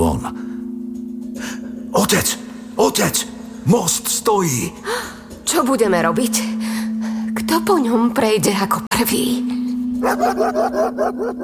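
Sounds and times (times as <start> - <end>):
steady low tonal hum: 0.0 - 11.4
speech: 2.1 - 6.7, 7.4 - 11.4
dog barking: 10.0 - 11.4.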